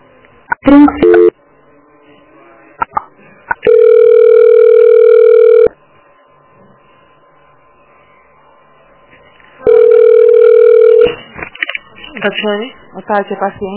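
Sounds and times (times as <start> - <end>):
steady loud telephone buzzing tone while a call is transferred: 0.6 - 1.4, 3.6 - 5.8, 9.6 - 11.2
speech: 0.7 - 1.1, 12.2 - 13.7.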